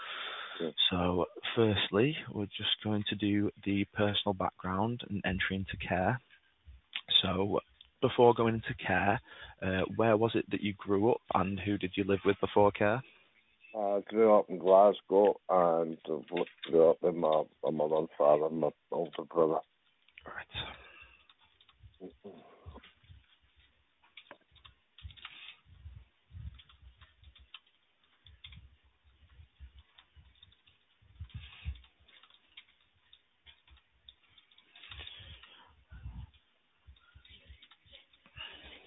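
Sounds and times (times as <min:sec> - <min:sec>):
speech: 0:00.6 - 0:06.3, 0:07.2 - 0:20.8
faint indistinct voice: 0:15.5 - 0:19.6
keys being typed on a computer keyboard through a phone-like line: 0:21.0 - 0:25.6, 0:26.4 - 0:38.8.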